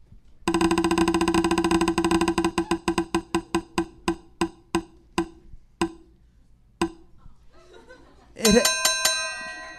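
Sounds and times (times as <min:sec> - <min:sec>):
spinning wheel clicking: 0:00.5 - 0:06.0
laughter: 0:07.2 - 0:08.5
bright ringing bell chiming: 0:08.4 - 0:09.7.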